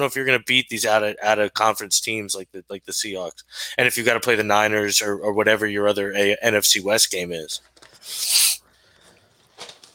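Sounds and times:
speech: 0.0s - 8.5s
paper rustling and shuffling: 8.9s - 9.9s.

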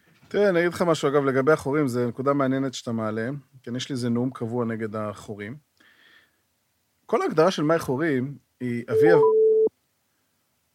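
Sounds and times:
speech: 0.3s - 5.7s, 7.1s - 9.4s
telephone tone as a phone is dialed: 8.9s - 9.7s.

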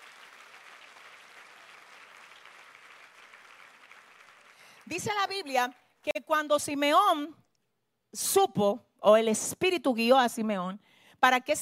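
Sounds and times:
crowd applauding: 0.0s - 5.1s
speech: 4.9s - 7.4s, 8.1s - 11.6s.

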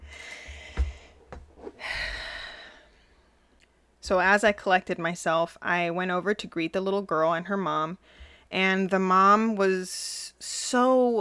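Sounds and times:
quiet slow deep breath: 0.0s - 3.3s
speech: 4.1s - 11.1s.

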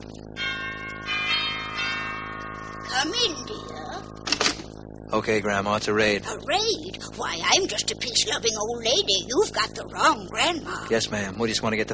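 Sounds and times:
cottage doorbell chiming: 0.4s - 4.3s
speech: 3.0s - 4.0s, 5.1s - 11.9s.

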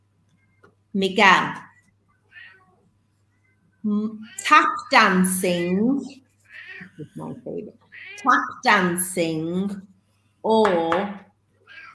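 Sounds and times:
speech: 1.0s - 1.6s, 3.8s - 6.2s, 6.9s - 11.3s
cat meowing: 2.3s - 2.8s, 6.5s - 7.0s, 7.9s - 8.3s, 11.7s - 11.9s.

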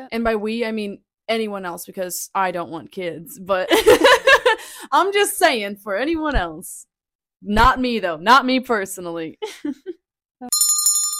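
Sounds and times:
speech: 0.1s - 10.8s
bright metallic bicycle bell ringing: 10.5s - 11.1s.

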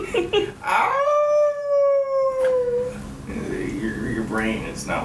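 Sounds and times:
speech: 0.2s - 1.1s, 4.4s - 5.0s
dogs howling: 0.6s - 3.0s.

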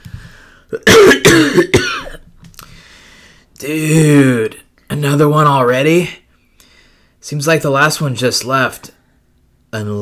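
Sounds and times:
speech: 0.7s - 1.8s, 3.7s - 4.3s, 5.2s - 6.2s, 7.2s - 9.0s, 9.7s - 9.9s
person clearing throat: 0.7s - 2.2s
person coughing: 0.7s - 2.2s.

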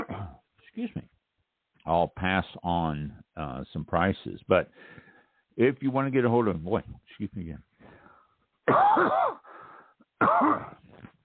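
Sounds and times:
person coughing from lisinopril medication: 0.0s - 0.4s, 8.7s - 9.5s, 10.2s - 11.1s
speech: 0.8s - 1.2s, 1.8s - 7.7s, 8.7s - 9.4s, 10.2s - 10.8s.

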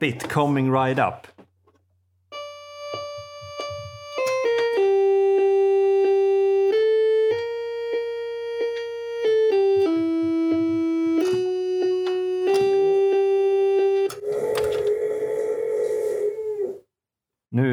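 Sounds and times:
speech: 0.0s - 1.3s
sustained melodic tones: 2.3s - 14.8s
dog howling: 14.2s - 16.9s.

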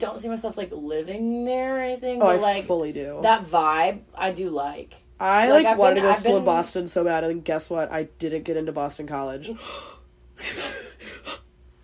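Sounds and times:
speech: 0.0s - 11.4s
sharp breathy surprised gasp: 9.6s - 10.1s.

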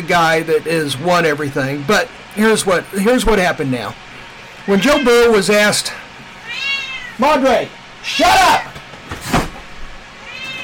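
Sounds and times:
speech: 0.1s - 4.1s, 4.7s - 8.7s
cat meowing loudly: 4.6s - 5.4s, 6.4s - 7.2s, 10.2s - 10.6s.

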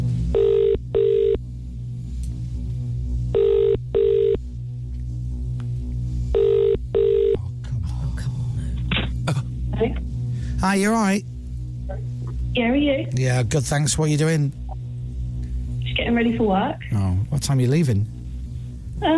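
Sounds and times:
steady low hum: 0.0s - 19.1s
telephone ringback tone from a call placed on a laptop: 0.4s - 1.4s, 3.4s - 4.4s, 6.4s - 7.4s
speech: 10.7s - 11.3s, 12.6s - 14.6s, 16.2s - 18.2s, 19.0s - 19.1s.

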